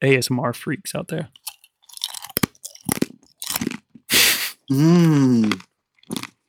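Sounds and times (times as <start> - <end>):
speech: 0.0 - 1.4, 4.7 - 6.2
crunchy trail mix being chewed: 1.4 - 4.1, 5.3 - 6.4
person humming an appreciative murmur: 4.7 - 5.6.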